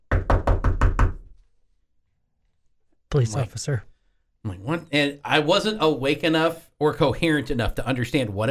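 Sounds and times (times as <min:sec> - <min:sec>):
firm knocking on a wooden door: 0:00.0 - 0:01.4
speech: 0:03.2 - 0:08.5.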